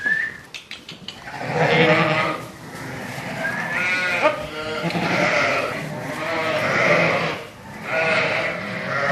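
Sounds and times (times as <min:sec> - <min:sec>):
brief whistle: 0:00.0 - 0:00.4
flock of sheep bleating: 0:01.3 - 0:09.0.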